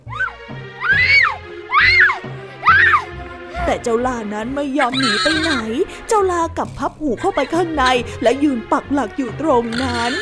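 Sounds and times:
woman screaming shrilly: 0:00.0 - 0:03.1, 0:04.9 - 0:05.7
speech: 0:03.7 - 0:10.2.

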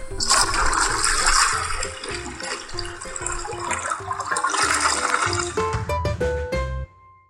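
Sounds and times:
toilet flushing with swirling water and gurgling drain: 0:00.0 - 0:05.8.

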